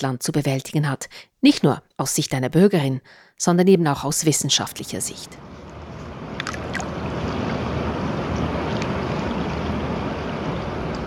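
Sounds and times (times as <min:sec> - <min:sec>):
speech: 0:00.0 - 0:05.6
brief higher water splashes: 0:05.7 - 0:11.0
fast-flowing river water rushing: 0:06.3 - 0:11.0.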